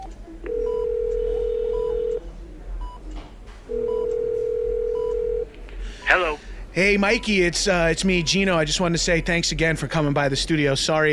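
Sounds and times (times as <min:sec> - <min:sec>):
telephone dialing tone as a call is placed: 0:00.0 - 0:02.2, 0:03.7 - 0:05.4
speech: 0:06.2 - 0:11.1.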